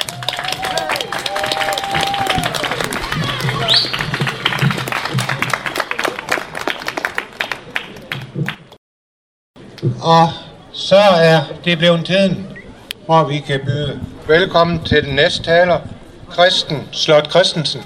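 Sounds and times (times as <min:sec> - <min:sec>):
audience applause: 0:00.0 - 0:08.8
speech: 0:10.1 - 0:12.5, 0:13.1 - 0:17.8.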